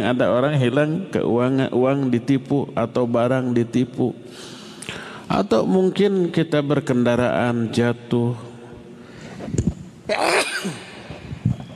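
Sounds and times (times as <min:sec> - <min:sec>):
speech: 0:00.0 - 0:04.5, 0:05.3 - 0:08.5, 0:09.5 - 0:10.8
quiet breathing: 0:04.3 - 0:05.3, 0:09.0 - 0:09.6
person sneezing: 0:10.1 - 0:11.1.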